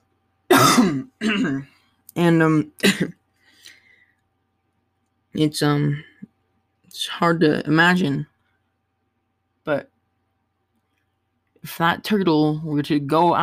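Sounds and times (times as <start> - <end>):
person clearing throat: 0.5 - 1.8
speech: 0.8 - 3.2, 5.4 - 6.1, 7.0 - 8.3, 9.6 - 9.9, 11.6 - 13.4.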